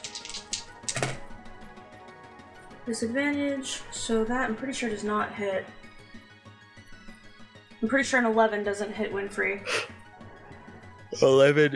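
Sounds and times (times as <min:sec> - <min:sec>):
small dice clattering across a hard tabletop: 0:00.0 - 0:01.2
speech: 0:02.9 - 0:05.8, 0:07.8 - 0:09.8, 0:11.2 - 0:11.7.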